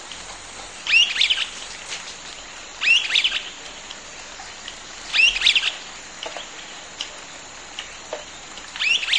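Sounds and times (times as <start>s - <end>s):
streaked flycatcher subspecies solitarius giving shrill squeaky calls: 0.8s - 1.6s, 2.8s - 3.6s, 5.1s - 5.9s, 8.8s - 9.1s.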